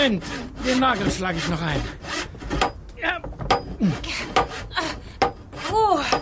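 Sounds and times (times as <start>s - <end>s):
speech: 0.0s - 2.7s, 3.8s - 4.4s
handsaw rasping through wood: 0.0s - 2.8s, 3.5s - 6.2s.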